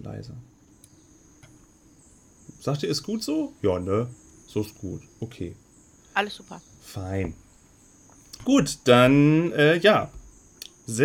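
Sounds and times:
high insect-like drone: 0.0s - 11.0s
speech: 0.1s - 0.6s, 2.6s - 5.6s, 6.2s - 7.4s, 8.4s - 10.2s, 10.9s - 11.0s
faint brief ticks: 0.6s - 1.6s, 10.2s - 10.8s.

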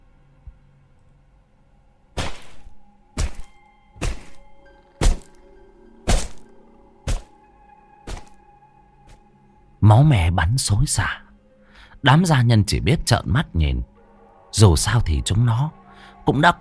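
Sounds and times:
wooden cane whacks struck hard on a person: 2.2s - 5.4s, 6.1s - 6.5s, 7.1s - 7.4s, 8.1s - 8.4s
speech: 9.9s - 11.2s, 12.0s - 13.9s, 14.5s - 16.5s.

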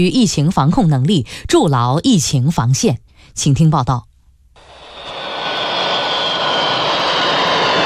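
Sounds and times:
speech: 0.0s - 4.1s
passenger jet engine roar landing at an airport in Qingdao: 4.6s - 7.8s.

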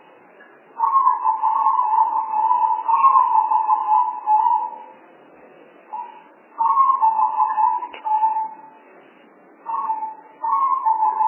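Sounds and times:
spotted dove cooing: 0.8s - 4.9s, 5.9s - 8.7s, 9.7s - 11.2s.

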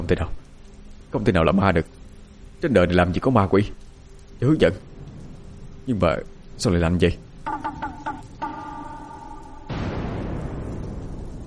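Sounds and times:
speech: 0.1s - 0.4s, 1.1s - 2.0s, 2.6s - 3.8s, 4.4s - 4.9s, 5.8s - 8.0s
thunderclap rumble: 7.2s - 11.4s
sustained tonal drone: 7.4s - 10.1s.

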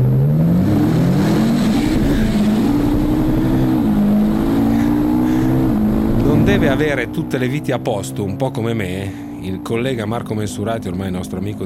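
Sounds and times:
Ferrari engine roaring: 0.0s - 11.6s
speech: 6.6s - 11.6s.

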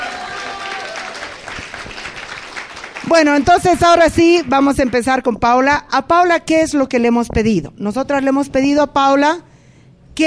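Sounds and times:
audience applause at a feminist self-defense debate event: 0.0s - 3.5s
speech: 3.1s - 9.5s.

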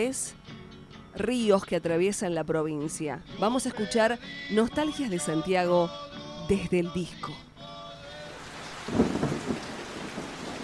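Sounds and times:
speech: 0.0s - 0.5s, 1.2s - 7.5s
rain falling steadily over the countryside: 8.3s - 10.6s
low rumble of thunder: 8.8s - 10.6s.

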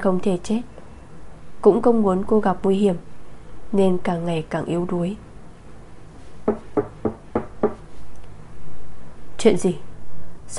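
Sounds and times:
speech: 0.0s - 0.7s, 1.6s - 3.1s, 3.7s - 5.3s, 9.4s - 9.9s
knocking on a door: 6.4s - 7.8s.

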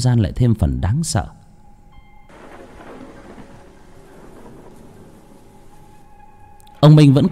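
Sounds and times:
speech: 0.0s - 1.4s, 6.8s - 7.2s
heavy rain pouring over a graveyard: 2.3s - 7.2s
rumbling thunder: 2.3s - 7.2s.

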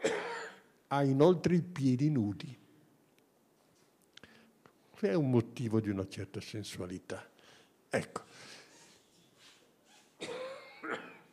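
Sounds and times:
person coughing: 0.0s - 0.7s, 10.2s - 11.3s
speech: 0.9s - 2.6s, 5.0s - 7.3s, 7.9s - 8.6s.

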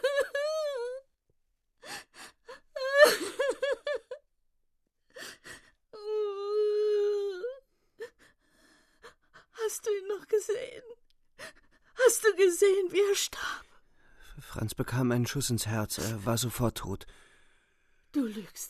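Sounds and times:
trembling woman sobbing and weeping in a radio drama: 0.0s - 1.2s, 1.8s - 4.4s, 5.0s - 13.4s
speech: 10.3s - 11.0s, 12.4s - 13.6s, 14.6s - 17.3s, 18.4s - 18.6s.

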